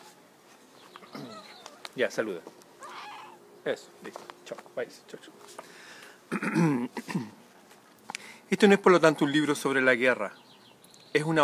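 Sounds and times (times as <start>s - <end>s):
faint hiss: 0.0s - 11.4s
pet cat meowing: 1.1s - 2.0s, 2.8s - 3.4s
speech: 2.0s - 2.6s, 3.6s - 5.7s, 6.4s - 7.4s, 8.5s - 10.4s, 11.1s - 11.4s.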